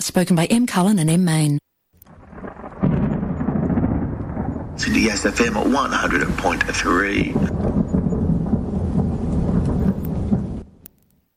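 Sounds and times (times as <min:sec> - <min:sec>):
speech: 0:00.0 - 0:01.7, 0:04.8 - 0:07.8
thunder rumbling: 0:02.0 - 0:10.9
rain hiss: 0:02.1 - 0:10.8.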